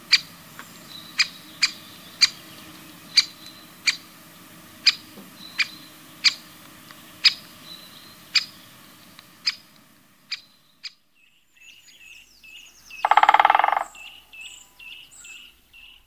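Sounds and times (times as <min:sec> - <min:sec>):
great spotted woodpecker drumming roll: 0:00.0 - 0:11.0, 0:12.9 - 0:14.5
great spotted woodpecker giving sharp kick calls: 0:00.0 - 0:16.0.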